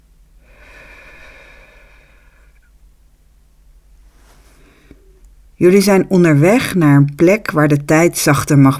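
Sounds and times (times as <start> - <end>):
long slow slightly nasal breath in during a guided calm-breathing exercise: 0.4 - 2.8, 4.0 - 5.2
soft exhale during a guided calm-breathing exercise: 0.4 - 2.8, 4.1 - 5.2
speech: 5.6 - 8.7.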